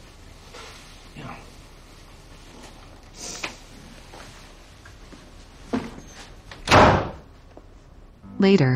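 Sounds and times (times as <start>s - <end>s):
woman slamming a door shut: 6.6s - 7.3s
speech: 8.4s - 8.7s.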